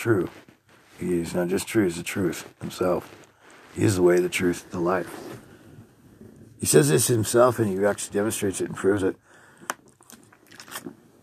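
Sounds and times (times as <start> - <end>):
speech: 0.0 - 5.4, 6.6 - 9.3
gulp: 9.6 - 11.2
soft wet mouth clicks: 9.6 - 11.2
sip of water: 9.8 - 11.2.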